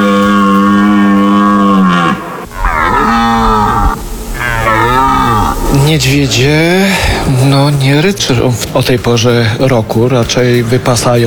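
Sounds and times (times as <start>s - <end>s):
male red deer roaring during the rut in the Tatra mountains: 0.0s - 7.4s
speech: 6.0s - 11.2s.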